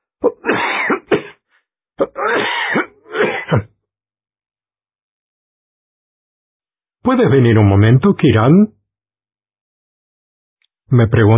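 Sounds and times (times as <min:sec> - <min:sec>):
choking cough: 0:00.2 - 0:01.4, 0:02.0 - 0:03.8
speech: 0:07.1 - 0:08.8, 0:10.9 - 0:11.3.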